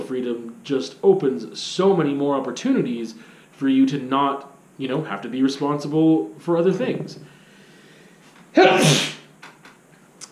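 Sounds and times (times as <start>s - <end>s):
speech: 0.1s - 7.3s, 8.5s - 9.1s
person sneezing: 8.6s - 9.3s.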